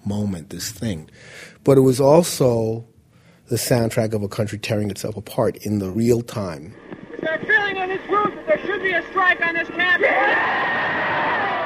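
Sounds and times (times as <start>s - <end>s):
speech: 0.1s - 2.9s, 3.5s - 7.1s, 7.9s - 11.2s
roar of a rumbling crowd: 6.9s - 11.6s
demonstrators shouting in strained voices: 7.3s - 11.6s.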